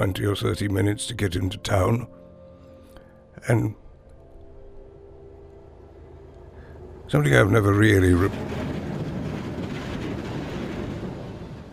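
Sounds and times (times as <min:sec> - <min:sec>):
speech: 0:00.0 - 0:02.2, 0:03.4 - 0:03.8, 0:07.1 - 0:08.6
train passing on rails: 0:04.8 - 0:11.7.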